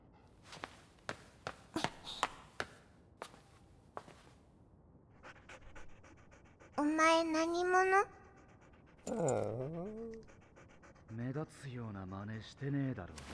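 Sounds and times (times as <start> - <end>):
dog panting: 5.1 - 13.3
speech: 7.0 - 8.2, 9.1 - 10.0, 11.2 - 13.3.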